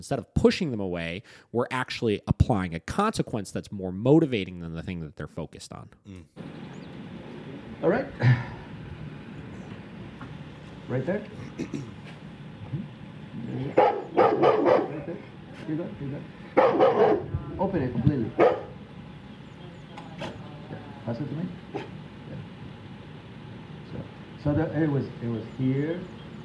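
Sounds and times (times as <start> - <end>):
speech: 0.0 - 6.8, 7.8 - 8.5, 10.9 - 12.0, 13.5 - 18.6, 21.1 - 22.0, 23.9 - 26.2
large rottweiler barking: 13.4 - 15.2, 16.5 - 17.3, 18.3 - 18.8.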